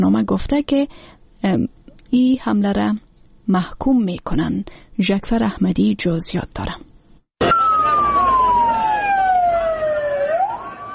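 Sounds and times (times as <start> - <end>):
speech: 0.0 - 7.6
ambulance siren wailing: 7.4 - 10.9.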